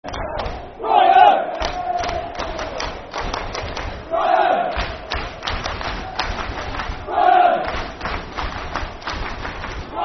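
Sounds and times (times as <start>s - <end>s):
football crowd chanting: 0.1s - 8.2s, 9.9s - 10.0s
football crowd clapping: 1.5s - 4.1s, 4.7s - 10.0s.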